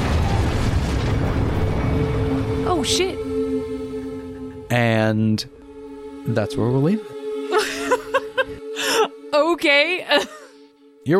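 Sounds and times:
massive explosion roar: 0.0s - 4.8s
speech: 2.8s - 3.2s, 4.7s - 5.6s, 6.2s - 7.2s, 9.6s - 10.4s
laughter: 7.5s - 9.1s.

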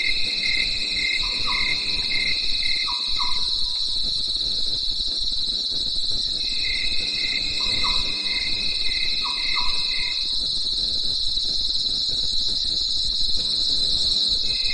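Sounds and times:
crickets chirping at night in the mountains: 0.0s - 14.7s.

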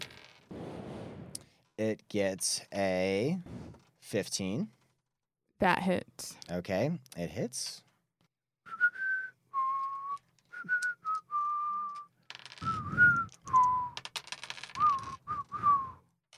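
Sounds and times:
speech: 1.8s - 4.8s, 5.6s - 7.9s
person whistling a short wavering tune: 8.7s - 14.0s, 14.8s - 16.0s.

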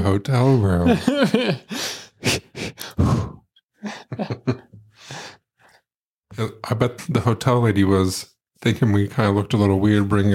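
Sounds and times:
speech: 0.0s - 2.4s, 6.7s - 10.3s
laughter: 0.4s - 1.7s, 3.8s - 4.8s
heavy rhythmic breathing with gasps, sighs and grunts in a hotel room: 1.6s - 4.3s, 4.9s - 5.9s.

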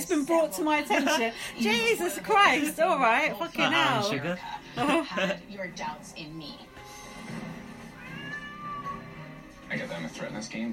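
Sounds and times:
speech: 0.1s - 6.7s, 9.7s - 10.7s
cat meowing: 7.8s - 9.3s.

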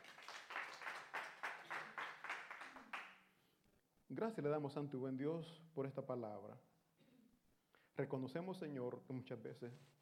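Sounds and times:
crowd clapping in a steady rhythm: 0.0s - 3.3s
speech: 4.1s - 6.7s, 8.0s - 10.0s.

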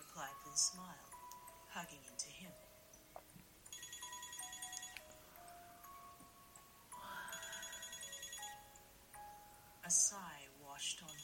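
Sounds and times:
speech: 0.2s - 1.1s, 1.7s - 2.7s, 9.9s - 11.2s
mobile phone ringtone with electronic trills: 3.7s - 6.1s, 6.9s - 9.5s, 11.1s - 11.2s.

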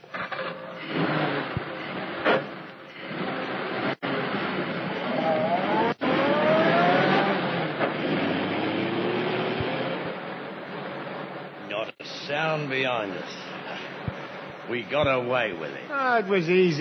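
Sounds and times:
car engine accelerating and pulling away: 0.0s - 11.7s
speech: 12.6s - 13.4s, 14.7s - 16.7s.

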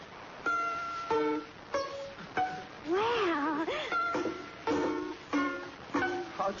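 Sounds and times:
plucked pizzicato violin notes: 0.4s - 2.7s, 3.8s - 6.5s.

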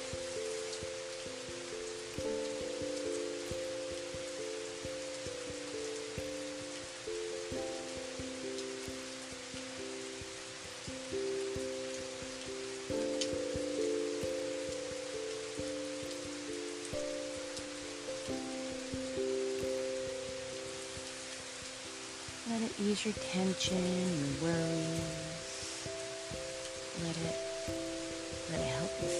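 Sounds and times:
gentle rain pattering on surfaces: 0.0s - 29.1s
speech: 22.6s - 25.2s.

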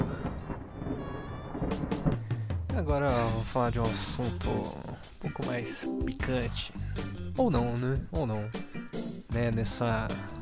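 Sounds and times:
deep thunder rumbling: 0.0s - 5.4s
speech: 2.8s - 8.6s, 9.3s - 10.3s.

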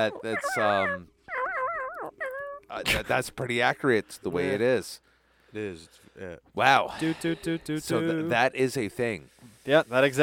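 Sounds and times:
speech: 0.0s - 1.1s, 2.7s - 10.2s
video game dog whining: 0.0s - 2.7s
video game dog barking: 0.1s - 2.4s.

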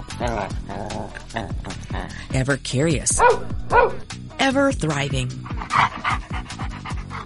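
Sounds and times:
speech: 0.2s - 6.0s
dog panting: 5.3s - 7.2s.

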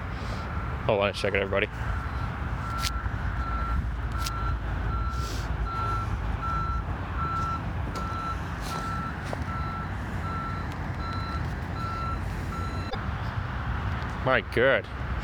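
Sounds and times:
vehicle engine rumbling: 0.0s - 15.2s
speech: 0.8s - 2.0s, 14.3s - 15.0s
high warning beep: 2.0s - 13.0s.

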